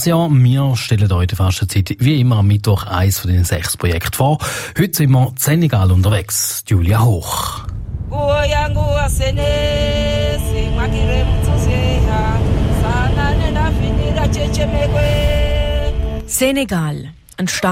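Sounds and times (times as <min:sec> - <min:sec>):
speech: 0:00.0 - 0:09.8, 0:16.3 - 0:17.7
busy street traffic with cars and horse carts: 0:08.7 - 0:16.6
cars passing: 0:09.4 - 0:16.5.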